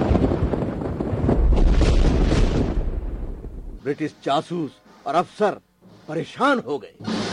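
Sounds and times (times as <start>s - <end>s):
bomb blast with rumbling roar of debris: 0.0s - 3.8s
speech: 3.9s - 7.2s.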